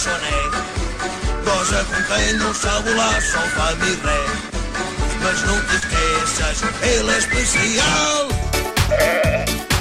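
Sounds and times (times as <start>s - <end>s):
speech: 0.0s - 4.6s, 5.2s - 9.7s
sheep bleating: 8.8s - 9.6s.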